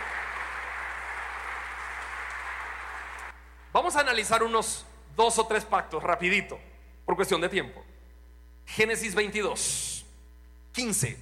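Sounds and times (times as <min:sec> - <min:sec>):
church audience applauding during a sermon: 0:00.0 - 0:03.4
speech: 0:03.7 - 0:07.9, 0:08.7 - 0:10.0, 0:10.8 - 0:11.1.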